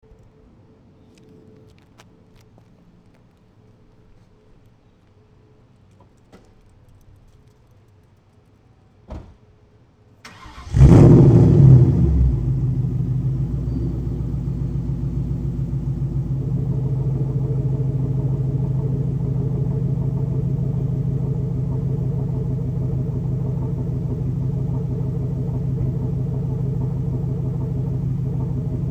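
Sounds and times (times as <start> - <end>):
warm engine with Cobra BBK longtube headers starting and idling: 10.2 - 28.9.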